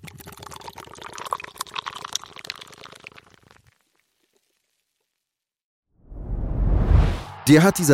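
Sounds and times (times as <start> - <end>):
beer pouring into a glass: 0.0 - 5.1
loud rushing noise: 6.1 - 7.9
speech: 7.5 - 7.9.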